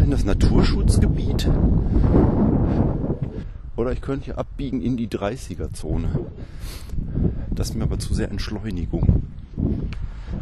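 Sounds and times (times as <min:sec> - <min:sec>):
strong wind buffeting the microphone: 0:00.0 - 0:10.4
speech: 0:00.2 - 0:10.4.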